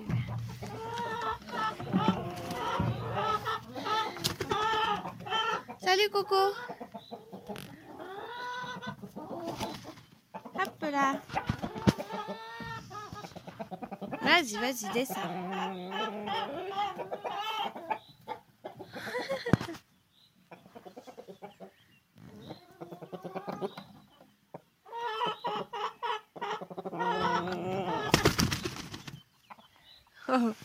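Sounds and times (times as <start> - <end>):
large rooster clucking: 0.0 - 19.8, 20.5 - 28.8
rooster wings flapping: 4.2 - 4.8, 28.0 - 29.2
speech: 6.0 - 6.7, 10.9 - 11.4, 14.4 - 15.9.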